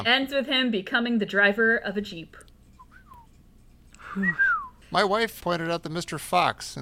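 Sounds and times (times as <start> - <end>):
speech: 0.0 - 2.5, 4.1 - 6.8
man whistling a short quick tune: 2.8 - 3.4, 4.0 - 4.8.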